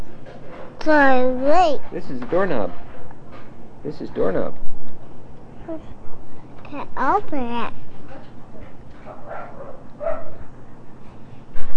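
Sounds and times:
steady low hum: 0:00.0 - 0:11.7
speech: 0:00.8 - 0:02.8, 0:03.8 - 0:04.7, 0:05.7 - 0:06.0, 0:06.7 - 0:07.8
dog barking in short yappy bursts: 0:09.0 - 0:10.5.

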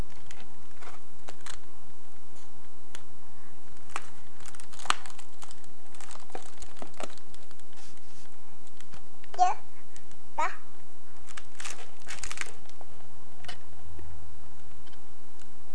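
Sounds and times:
balloon crinkling and crackling as a child chews and squeezes it: 0:00.0 - 0:01.7, 0:03.6 - 0:10.2, 0:11.2 - 0:13.6
steady low hum: 0:00.0 - 0:15.7.

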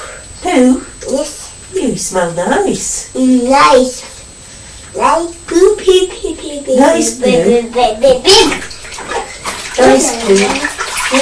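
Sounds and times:
speech: 0:00.6 - 0:01.3, 0:01.9 - 0:04.1, 0:05.0 - 0:08.7, 0:09.8 - 0:11.2
young child's voice in the bath: 0:03.2 - 0:04.2, 0:05.0 - 0:08.6, 0:09.8 - 0:11.2
bathwater splashing while rinsing a young child in a tub: 0:07.1 - 0:11.2.

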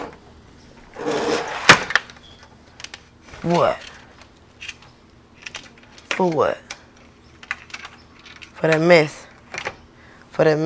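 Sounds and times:
screen sliding open all the way: 0:00.9 - 0:02.4
speech: 0:03.4 - 0:03.9, 0:06.2 - 0:06.6, 0:08.6 - 0:09.2, 0:10.4 - 0:10.6.

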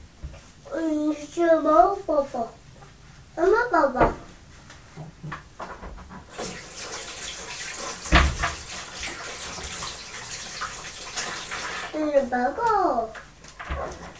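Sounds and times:
speech: 0:00.8 - 0:02.6, 0:03.4 - 0:04.2, 0:12.2 - 0:13.2
running water streaming from a tap: 0:06.3 - 0:12.0.

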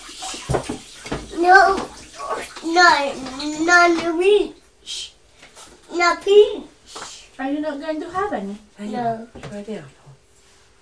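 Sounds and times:
running tap water as an apple is rinsed: 0:00.0 - 0:04.6
child talking: 0:01.3 - 0:05.1, 0:05.9 - 0:06.8, 0:07.4 - 0:09.3
speech: 0:02.7 - 0:05.1, 0:05.9 - 0:06.7, 0:07.4 - 0:10.0.

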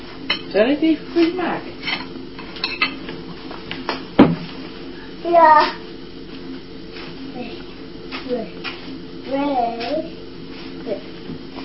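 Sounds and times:
speech: 0:00.5 - 0:02.0, 0:05.2 - 0:05.9, 0:08.3 - 0:08.7, 0:09.3 - 0:10.2, 0:10.9 - 0:11.1
metal cutlery scraping and clinking on a crockery plate: 0:01.8 - 0:03.0.

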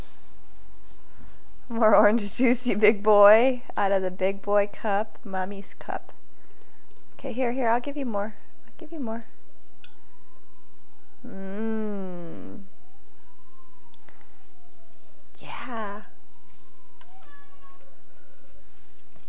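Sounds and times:
speech: 0:01.7 - 0:06.1, 0:07.2 - 0:09.3, 0:11.2 - 0:12.5
person murmuring: 0:11.3 - 0:12.6
cat meowing: 0:16.8 - 0:18.0.

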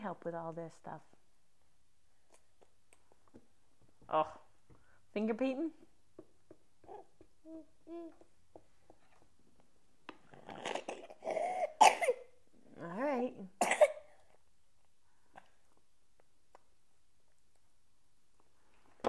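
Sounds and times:
speech: 0:00.0 - 0:01.2, 0:04.1 - 0:04.5, 0:05.2 - 0:05.8, 0:06.9 - 0:08.3, 0:12.8 - 0:13.8
harsh coughs: 0:11.2 - 0:12.3, 0:13.6 - 0:14.1.

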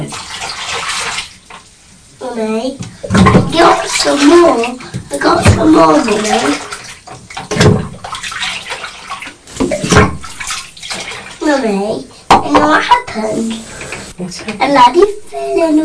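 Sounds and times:
water splashing in a bathtub with a child playing with boats: 0:00.0 - 0:15.8
child talking: 0:02.2 - 0:02.8, 0:03.4 - 0:06.7, 0:11.4 - 0:13.7, 0:14.4 - 0:15.8
speech: 0:02.4 - 0:06.7, 0:11.5 - 0:15.8.

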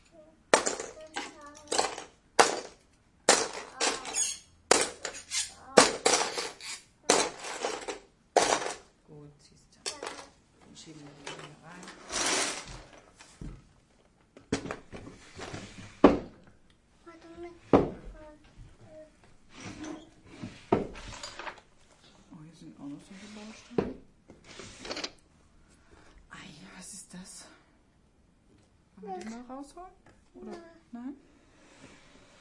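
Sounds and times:
small child talking: 0:00.0 - 0:01.8, 0:03.6 - 0:04.4, 0:05.5 - 0:06.0, 0:09.9 - 0:10.4, 0:17.0 - 0:19.2, 0:29.0 - 0:29.6, 0:30.4 - 0:30.9
hard toy building blocks clattering into a drawer: 0:00.5 - 0:08.9, 0:09.8 - 0:10.4, 0:11.1 - 0:13.0, 0:20.9 - 0:21.7.

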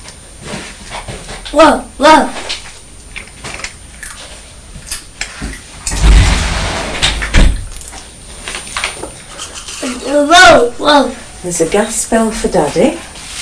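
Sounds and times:
speech: 0:01.5 - 0:02.4, 0:10.2 - 0:13.1
louder rushing scrape of front door: 0:05.9 - 0:07.7
front door being opened at home: 0:05.9 - 0:08.1
front door knocks and rattles: 0:07.0 - 0:07.7.

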